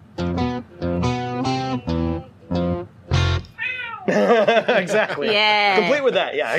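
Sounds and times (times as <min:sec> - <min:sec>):
distorted buzzy musical notes in a music end tag: 0:00.0 - 0:03.6
cat meowing: 0:03.6 - 0:04.1
laughter: 0:04.1 - 0:06.5
speech: 0:04.9 - 0:06.5.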